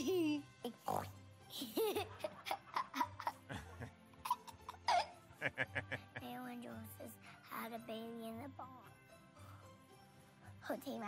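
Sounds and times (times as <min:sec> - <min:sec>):
speech: 0:00.0 - 0:02.6, 0:05.4 - 0:09.0, 0:10.6 - 0:11.0
child giggling: 0:01.5 - 0:06.5.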